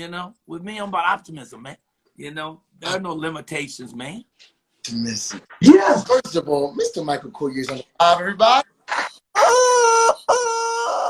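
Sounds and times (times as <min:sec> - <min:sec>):
speech: 0:00.0 - 0:08.7
rooster crowing: 0:09.4 - 0:11.0.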